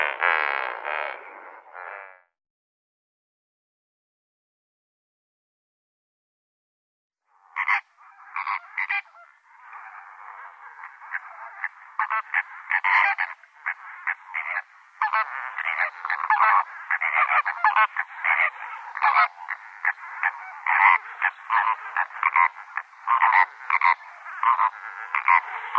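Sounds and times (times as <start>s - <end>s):
lesser flamingo flock calling: 0.0s - 2.0s, 7.4s - 25.7s
speech: 17.8s - 19.4s.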